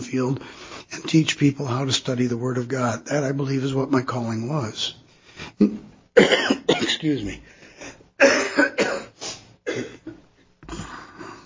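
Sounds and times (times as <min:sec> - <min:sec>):
speech: 0:00.1 - 0:05.0, 0:05.6 - 0:06.4, 0:07.0 - 0:07.6
person coughing: 0:05.6 - 0:07.1, 0:08.2 - 0:11.4.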